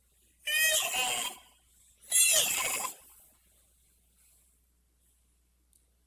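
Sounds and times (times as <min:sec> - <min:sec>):
voice imitating a donkey's bray: 0:00.5 - 0:01.5, 0:02.1 - 0:03.0.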